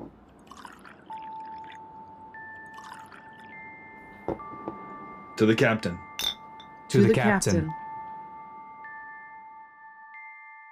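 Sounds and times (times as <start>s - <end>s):
whiskey being poured into shot glasses: 0.2s - 3.9s
glass clinking: 0.4s - 5.0s, 6.0s - 7.5s
speech: 5.4s - 6.1s, 6.9s - 7.8s.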